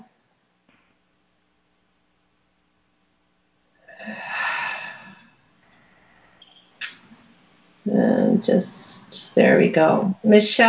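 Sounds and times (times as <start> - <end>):
group of people taking a deep breath together: 4.0 - 6.6
speech: 7.9 - 10.6.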